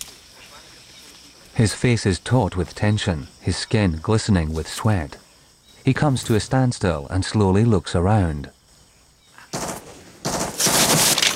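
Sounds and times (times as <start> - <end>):
speech: 1.6 - 5.2, 5.8 - 8.6
automatic gunfire from a soldier shooting into the jungle: 9.6 - 11.3.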